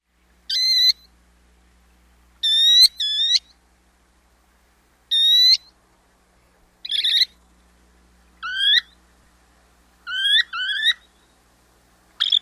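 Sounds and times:
Baird's Sandpiper calls: 0:00.5 - 0:01.1, 0:02.4 - 0:03.6, 0:05.1 - 0:05.7, 0:06.8 - 0:07.4, 0:08.4 - 0:09.0, 0:10.0 - 0:11.3, 0:12.2 - 0:12.4.

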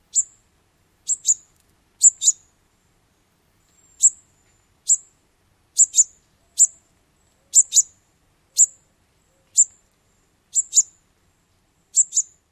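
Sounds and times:
bird calls: 0:01.0 - 0:02.5, 0:05.8 - 0:09.8, 0:10.5 - 0:10.9, 0:11.9 - 0:12.4.

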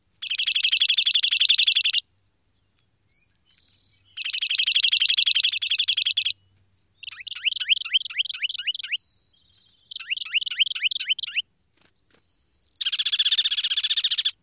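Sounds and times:
Juniper Titmouse singing: 0:00.2 - 0:02.0, 0:02.8 - 0:11.5, 0:12.2 - 0:14.4.

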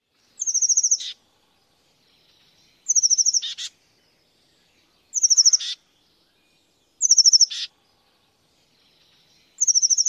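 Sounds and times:
oak titmouse call: 0:00.4 - 0:01.2, 0:02.8 - 0:03.8, 0:05.1 - 0:05.8, 0:07.0 - 0:07.7, 0:09.6 - 0:10.0.

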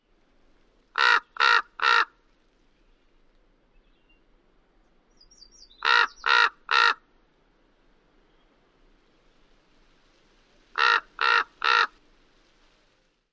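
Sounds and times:
Chihuahuan Raven calls: 0:00.9 - 0:02.2, 0:05.6 - 0:07.1, 0:10.7 - 0:12.0.

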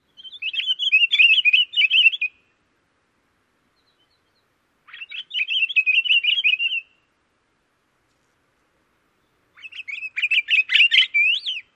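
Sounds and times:
pine grosbeak song: 0:00.0 - 0:02.6, 0:03.6 - 0:07.2, 0:09.0 - 0:11.7.

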